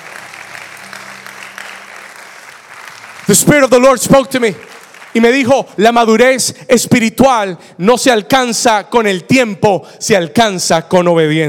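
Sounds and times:
large audience applauding: 0.0s - 5.7s
speech: 3.3s - 11.4s.

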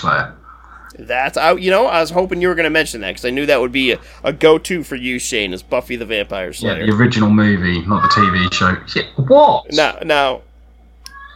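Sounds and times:
speech: 0.0s - 10.5s
cat meowing for food: 7.8s - 8.6s, 11.1s - 11.3s.

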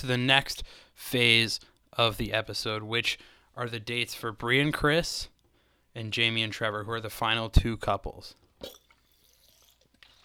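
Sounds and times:
speech: 0.0s - 5.3s, 6.0s - 8.8s
person sipping water: 8.6s - 10.2s.

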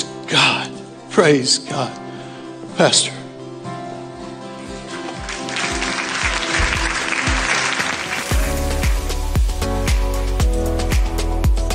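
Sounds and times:
speech: 0.3s - 2.0s, 2.8s - 3.2s
audience applauding: 5.0s - 9.2s
loud music with deep bass and a steady beat: 8.2s - 11.7s.

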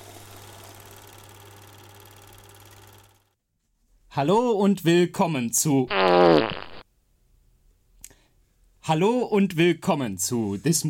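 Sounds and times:
speech: 4.2s - 6.6s, 8.9s - 10.8s
fart: 5.9s - 6.8s.

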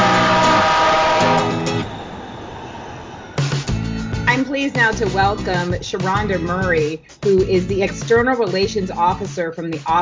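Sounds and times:
sustained tonal whine of a train: 0.0s - 6.7s
train pulling into a station: 0.0s - 8.2s
speech: 4.6s - 9.9s.

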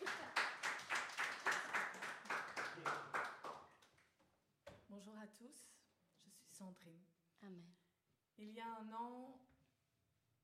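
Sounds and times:
crowd clapping together in a steady rhythm: 0.0s - 4.2s
speech: 5.3s - 7.8s, 8.4s - 9.6s.

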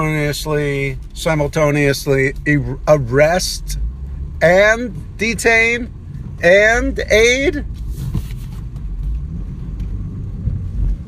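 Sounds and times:
speech: 0.0s - 7.8s
low steady road rumble of a moving car: 0.0s - 11.0s
other cars passing close in brief whooshes: 2.3s - 11.0s.

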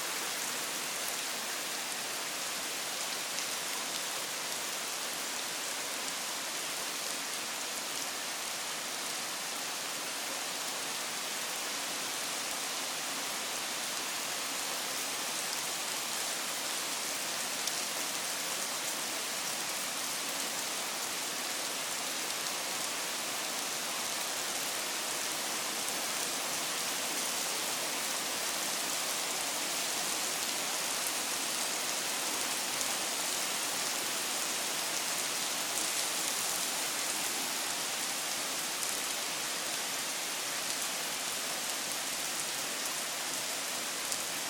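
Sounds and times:
steady rain: 0.0s - 44.4s.

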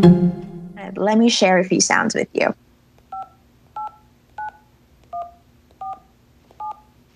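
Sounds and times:
faint hum: 0.1s - 7.1s
speech: 1.3s - 2.6s
telephone keypad dialing tones: 3.1s - 6.9s.

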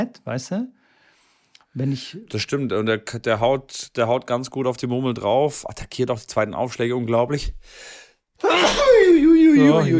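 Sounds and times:
speech: 0.0s - 0.8s, 1.8s - 9.9s
person sneezing: 8.4s - 9.3s.

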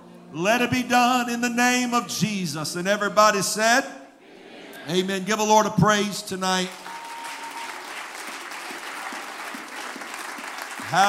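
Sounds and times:
speech: 0.3s - 4.0s, 4.8s - 6.9s
congregation clapping and applauding: 6.6s - 11.0s.

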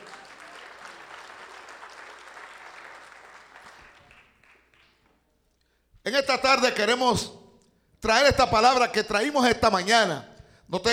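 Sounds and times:
audience applauding: 0.0s - 5.2s
speech: 6.1s - 7.4s, 8.0s - 10.9s.

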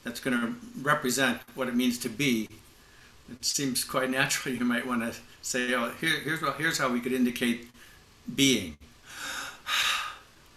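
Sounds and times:
speech: 0.0s - 2.6s, 3.3s - 8.9s
breath exhaled close to the microphone: 9.0s - 10.3s.

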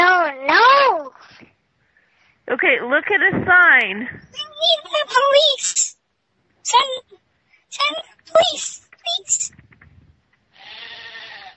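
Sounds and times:
speech: 2.6s - 6.0s, 6.7s - 9.6s
sheep bleating among many sheep: 10.5s - 11.5s.

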